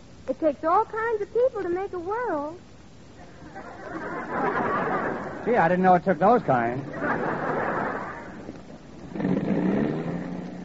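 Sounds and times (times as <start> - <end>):
speech: 0.3 - 2.7, 5.4 - 7.3
laughter: 3.2 - 8.6
bus engine sputtering and revving roughly: 9.0 - 10.6.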